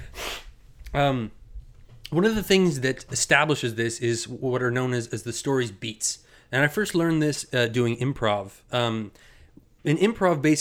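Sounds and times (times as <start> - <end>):
short sharp nasal sniff into a microphone: 0.0 - 0.6
speech: 0.9 - 1.4, 2.1 - 10.6.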